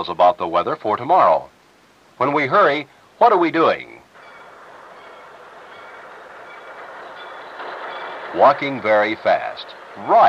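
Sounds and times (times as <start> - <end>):
speech: 0.0 - 1.6, 2.2 - 4.0, 8.4 - 10.2
moving train rumble with broad hissing roar: 3.4 - 10.2.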